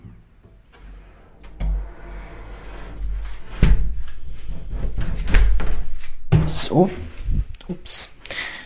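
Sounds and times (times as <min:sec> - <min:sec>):
studio door closing with a thud: 0:00.7 - 0:04.2, 0:04.8 - 0:06.8
speech: 0:06.7 - 0:07.1, 0:07.7 - 0:08.1.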